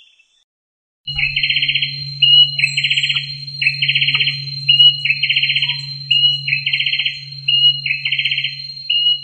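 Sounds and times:
greyback bird trill combination: 1.1s - 9.2s.

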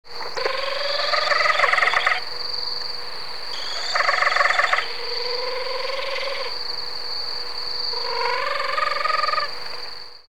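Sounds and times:
Ninox connivens barking owl calling: 0.2s - 2.4s, 3.5s - 6.6s, 7.9s - 9.7s.

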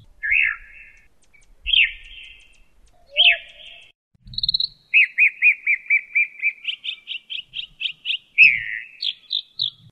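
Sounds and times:
mockingbird singing varied phrases: 0.2s - 9.8s.

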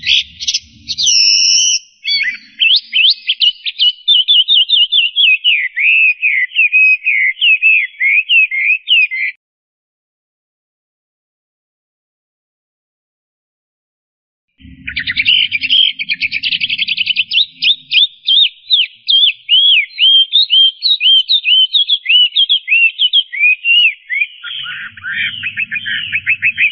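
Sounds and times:
low rumble: 0.0s - 1.5s, 14.6s - 18.0s, 24.6s - 26.6s
Chinese hwamei singing loud rapid whistled phrases: 0.0s - 9.4s, 14.6s - 26.6s.

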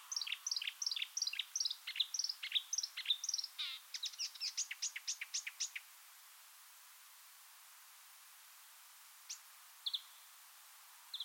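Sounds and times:
marsh warbler song: 0.0s - 5.9s, 9.2s - 10.4s.

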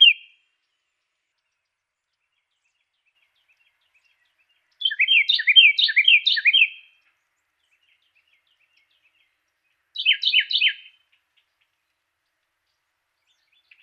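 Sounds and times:
Carolina wren song of repeated two-note slurred syllables: 0.0s - 13.8s.

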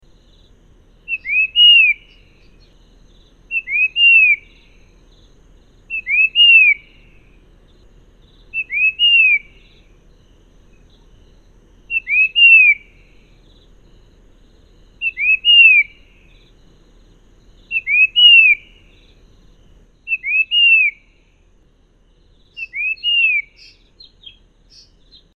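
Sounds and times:
cipo bird call: 1.0s - 5.1s, 5.9s - 10.0s, 11.9s - 13.8s, 15.0s - 16.6s, 17.6s - 19.2s, 20.0s - 21.3s, 22.4s - 25.3s.

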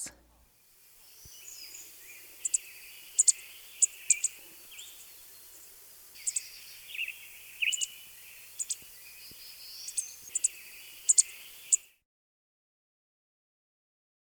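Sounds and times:
Townsend's warbler singing: 0.8s - 12.0s.

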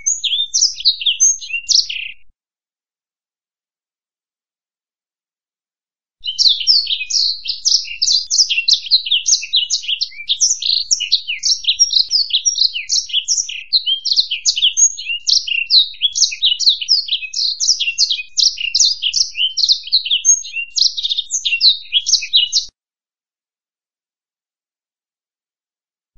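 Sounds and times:
black-throated canary twittering song: 0.0s - 2.3s, 6.2s - 22.7s.

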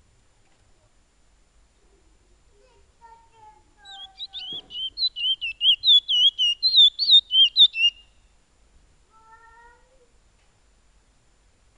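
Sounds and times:
piolet bird song: 3.8s - 8.4s.

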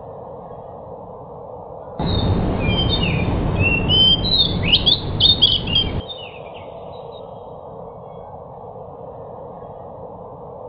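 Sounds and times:
low background noise: 0.0s - 10.6s
pied bush chat singing rapid scratchy chirps and brief whistles: 2.0s - 7.5s.

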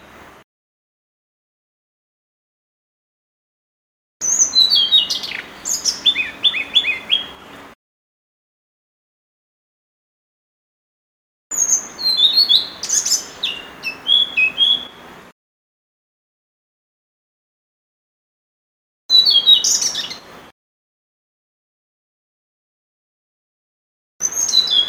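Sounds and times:
blue-throated flycatcher whistled song: 4.2s - 7.4s, 11.5s - 15.1s, 19.1s - 20.3s, 24.2s - 24.8s.

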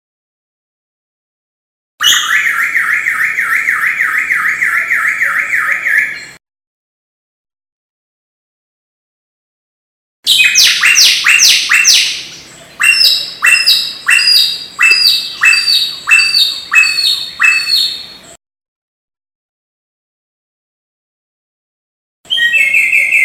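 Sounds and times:
Samyong bird song with rapid ringing notes sliding downward: 2.0s - 6.4s, 10.3s - 18.4s, 22.3s - 23.2s.

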